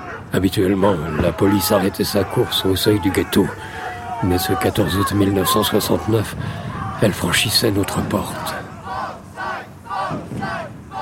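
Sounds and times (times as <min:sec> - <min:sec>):
crowd of nationalists chanting during street clashes with police: 0:00.0 - 0:10.9
speech: 0:00.3 - 0:08.6.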